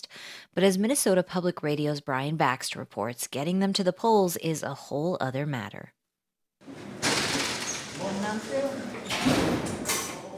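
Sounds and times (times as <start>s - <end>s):
speech: 0.5s - 6.0s
heavy prison doors at a high-security correctional facility clanking shut: 6.7s - 10.3s.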